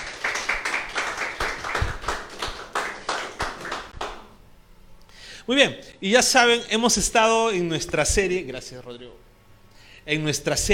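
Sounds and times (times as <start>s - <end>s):
audience clapping hands in a steady rhythmic beat: 0.0s - 4.4s
speech: 5.5s - 9.3s, 10.1s - 10.7s.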